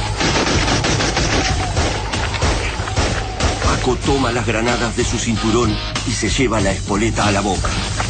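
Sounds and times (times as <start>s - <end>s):
sustained gunfire aimed at beetle-like creatures: 0.1s - 3.9s
speech: 4.1s - 8.0s.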